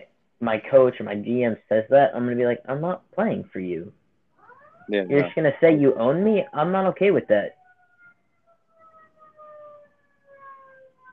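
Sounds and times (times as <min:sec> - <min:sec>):
speech: 0:00.4 - 0:04.0, 0:04.9 - 0:07.6
sirens wailing: 0:04.4 - 0:11.1.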